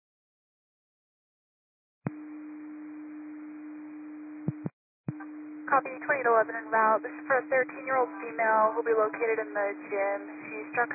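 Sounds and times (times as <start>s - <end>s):
radio static hiss: 4.5s - 10.9s
speech: 5.7s - 10.9s.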